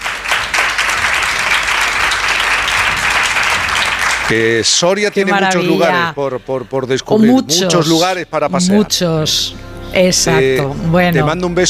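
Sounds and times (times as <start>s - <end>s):
audience applause: 0.0s - 5.2s
speech: 4.3s - 11.6s.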